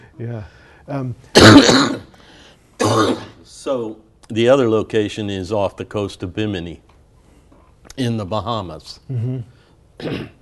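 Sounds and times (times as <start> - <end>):
speech: 0.2 - 2.1, 2.9 - 6.9, 8.0 - 10.4
person with a bad cough coughing: 1.3 - 2.2, 2.8 - 3.4, 10.0 - 10.4.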